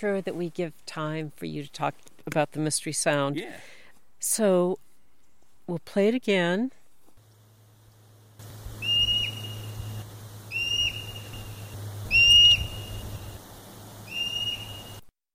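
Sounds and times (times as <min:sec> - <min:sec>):
speech: 0:00.0 - 0:04.9, 0:05.7 - 0:06.8
low steady hum: 0:06.7 - 0:15.0
Olympic marmot alarm whistles: 0:08.8 - 0:09.8, 0:10.5 - 0:13.2, 0:14.1 - 0:15.0.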